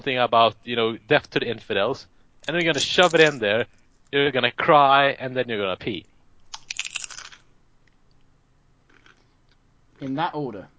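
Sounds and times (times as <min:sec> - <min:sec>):
speech: 0:00.0 - 0:06.1, 0:10.0 - 0:10.7
crunchy brittle food being chewed: 0:02.5 - 0:03.4, 0:06.4 - 0:08.3, 0:08.9 - 0:10.1.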